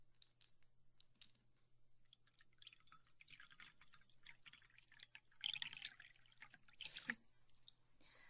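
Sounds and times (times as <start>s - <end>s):
water splashing and trickling: 2.0s - 7.8s.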